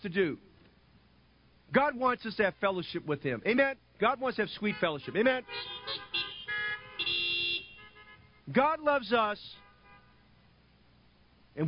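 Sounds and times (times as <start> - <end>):
speech: 0.0 - 0.5, 1.7 - 6.3, 8.5 - 9.6
car horns honking: 4.4 - 10.4.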